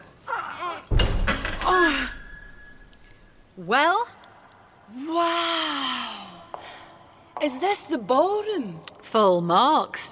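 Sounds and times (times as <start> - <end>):
heavy hospital corridor doors shoved open with thudding bang and creaking swing: 0.9 - 3.5
speech: 3.6 - 4.1, 4.9 - 5.8, 7.4 - 10.1.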